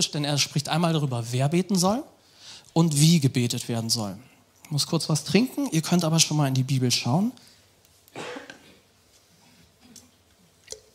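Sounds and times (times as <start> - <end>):
speech: 0.0 - 2.2, 2.8 - 7.5
harsh cough: 8.1 - 8.8
throat clearing: 8.1 - 8.8.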